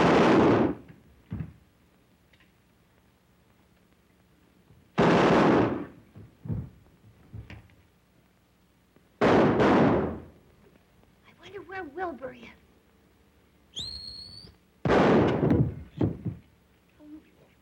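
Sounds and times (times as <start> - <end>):
loud booming gunshots with echo: 0.0 - 0.9, 5.0 - 6.0, 9.2 - 10.4, 14.8 - 15.9
loud crashing burst: 0.0 - 0.9, 5.0 - 6.0, 9.2 - 10.3, 14.8 - 15.9
soft thuds: 6.1 - 7.6, 15.3 - 16.5
speech: 11.7 - 12.7
person whistling a short high whistle: 13.8 - 14.5.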